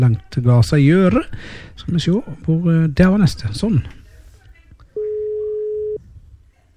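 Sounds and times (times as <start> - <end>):
speech: 0.0 - 4.0
telephone ringback tone during outgoing call: 5.0 - 6.0.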